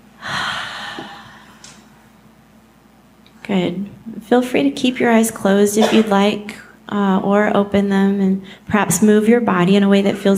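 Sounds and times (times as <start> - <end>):
loud exhale during a guided breathing exercise: 0.2 - 1.8
speech: 3.5 - 10.3.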